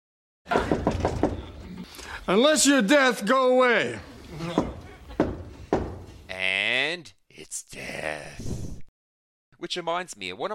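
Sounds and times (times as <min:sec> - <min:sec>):
quick knocks on a wooden door: 0:00.5 - 0:01.6, 0:04.4 - 0:06.1
speech: 0:02.3 - 0:04.6, 0:06.8 - 0:08.6, 0:09.6 - 0:10.5.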